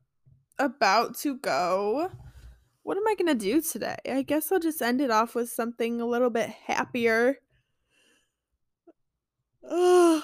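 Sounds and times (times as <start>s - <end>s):
speech: 0.6s - 2.2s, 2.8s - 7.4s, 9.6s - 10.2s
person yawning: 9.6s - 10.2s.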